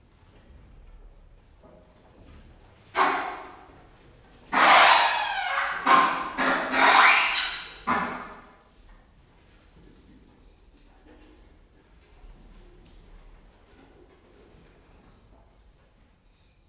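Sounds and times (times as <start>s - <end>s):
hamadryas baboon screaming at Gyor zoo: 3.0s - 3.6s, 4.5s - 8.5s.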